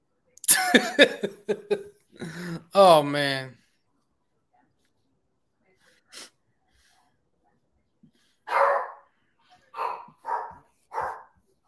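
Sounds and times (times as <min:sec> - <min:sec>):
laughter: 0:00.5 - 0:02.4
speech: 0:00.7 - 0:03.6
dog barking: 0:08.5 - 0:09.1, 0:09.7 - 0:11.4.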